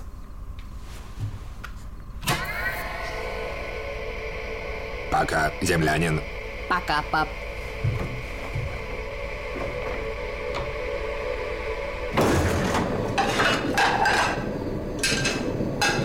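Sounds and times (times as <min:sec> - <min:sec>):
steady low hum: 0:00.0 - 0:16.0
speech: 0:05.2 - 0:07.4
dishes clinking as they are loaded into a dishwasher: 0:13.2 - 0:16.0.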